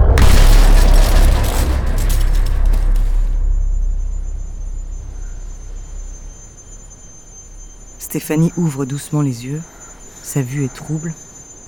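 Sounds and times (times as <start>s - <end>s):
Rover car tumbling down a steep slope and crashing 40 metres below: 0.0s - 8.0s
clattering debris: 0.0s - 8.0s
deep rumble: 0.0s - 8.1s
speech: 8.1s - 11.2s.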